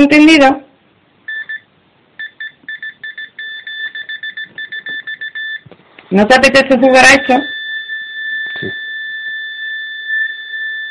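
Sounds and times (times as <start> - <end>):
speech: 0.0 - 0.6, 6.1 - 7.6, 8.6 - 8.8
short steady-pitched electronic beeps used as yes or no answers: 1.3 - 5.6, 7.0 - 10.9.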